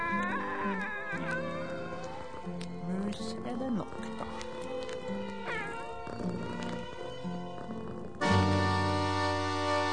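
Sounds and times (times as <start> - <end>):
cat meowing: 0.0 - 2.4, 5.4 - 6.9
musical backing: 0.0 - 9.9.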